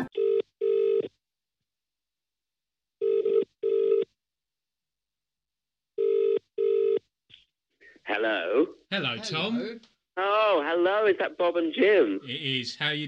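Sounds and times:
telephone ringing as a call is placed: 0:00.1 - 0:01.1, 0:03.0 - 0:04.0, 0:06.0 - 0:07.0
speech: 0:08.2 - 0:13.0.

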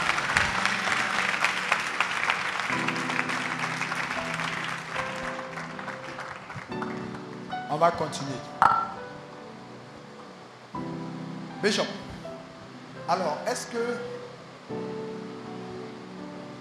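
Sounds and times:
audience applauding: 0:00.0 - 0:08.4
sustained keyboard or organ chords: 0:00.0 - 0:16.5
speech: 0:07.8 - 0:08.7, 0:11.6 - 0:12.0, 0:13.1 - 0:14.9.

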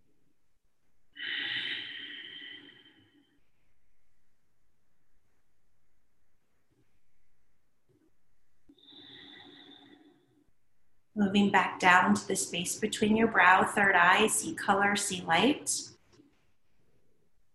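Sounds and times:
slow deep breathing during a guided meditation: 0:01.1 - 0:04.1, 0:08.7 - 0:10.6
speech: 0:11.2 - 0:15.9.

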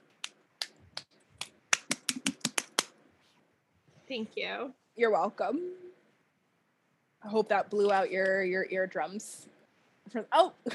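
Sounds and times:
one person clapping sharply: 0:00.2 - 0:02.9
speech: 0:04.1 - 0:05.9, 0:07.2 - 0:09.5, 0:10.1 - 0:10.7.

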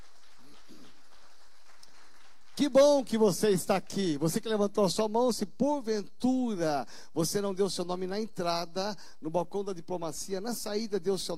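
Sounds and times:
audience applauding: 0:00.0 - 0:03.1
speech: 0:02.6 - 0:11.3.

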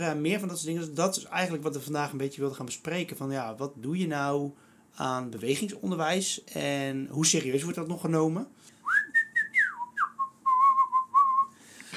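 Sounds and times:
speech: 0:00.0 - 0:08.8
person whistling a short melodic tune: 0:08.8 - 0:11.6.

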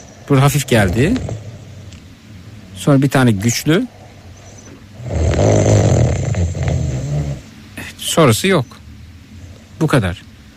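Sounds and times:
light snoring from a device speaker: 0:00.0 - 0:02.0, 0:02.6 - 0:08.0
speech: 0:00.3 - 0:01.5, 0:02.8 - 0:04.0, 0:08.1 - 0:08.8, 0:09.8 - 0:10.2.

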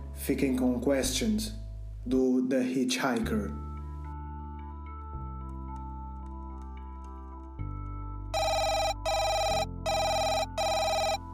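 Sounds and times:
speech: 0:00.3 - 0:03.6
telephone ringing with an incoming call: 0:08.4 - 0:11.3.

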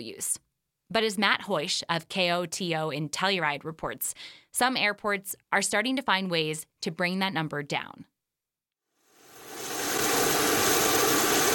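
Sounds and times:
speech: 0:00.0 - 0:08.1
aircraft jet roar on the tarmac during refueling with sustainable aviation fuel: 0:09.3 - 0:11.5.

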